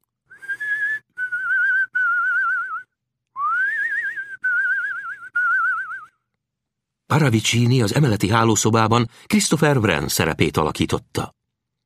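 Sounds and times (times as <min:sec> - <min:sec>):
tune whistled softly from upstairs: 0:00.2 - 0:06.3
speech: 0:07.2 - 0:11.4.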